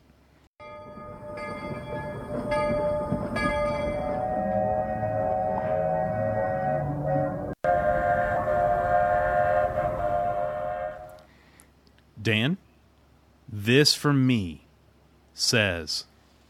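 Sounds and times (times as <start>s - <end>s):
steam train chuffing and rumbling: 0.6s - 11.3s
steam train whistle: 3.9s - 11.3s
speech: 12.2s - 12.6s, 13.6s - 14.6s, 15.4s - 16.1s.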